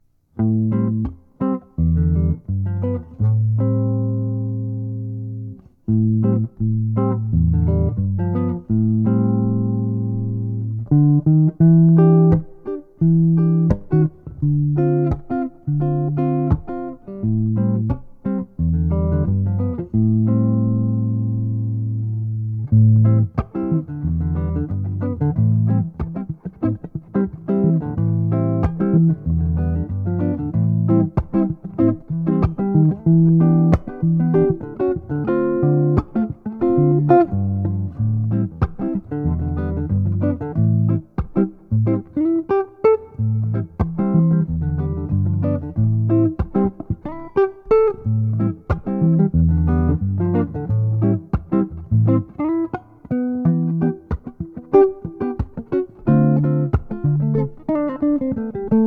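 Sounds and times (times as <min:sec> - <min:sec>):
sunburst archtop electric guitar playing demonstrating pickups: 0:00.4 - 0:58.8.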